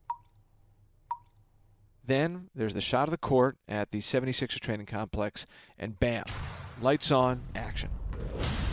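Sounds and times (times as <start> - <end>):
water dripping from a faucet: 0.0 - 0.4, 1.1 - 1.4
speech: 2.1 - 8.6.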